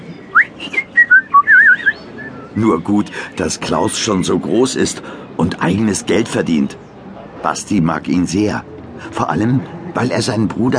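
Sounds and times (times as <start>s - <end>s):
faint murmur: 0.0s - 10.7s
man whistling a short lilting tune: 0.3s - 2.6s
speech: 2.6s - 10.7s.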